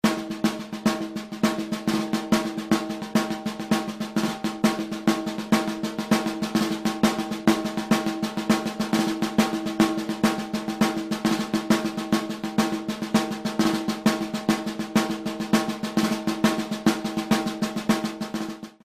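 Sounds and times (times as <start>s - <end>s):
caixa snare drum: 0.0s - 18.8s.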